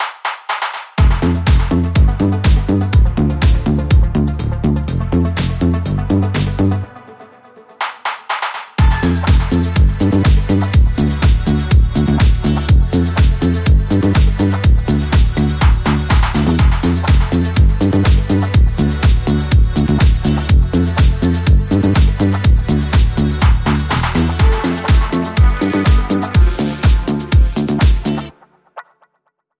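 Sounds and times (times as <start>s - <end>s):
electro clubbing rhythm: 0.0s - 28.4s.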